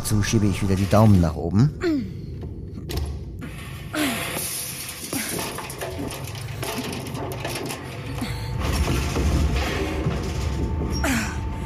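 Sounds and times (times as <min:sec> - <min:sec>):
scraping and thumping of someone crawling into a ventilation shaft: 0:00.0 - 0:01.5, 0:02.8 - 0:11.5
speech: 0:00.1 - 0:02.2
metal ventilation shaft grate clattering loose: 0:03.4 - 0:11.0.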